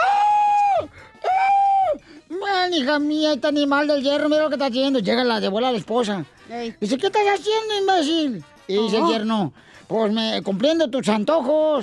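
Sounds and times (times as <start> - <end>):
voice imitating a woman screaming: 0.0 - 2.0
speech: 2.7 - 11.8.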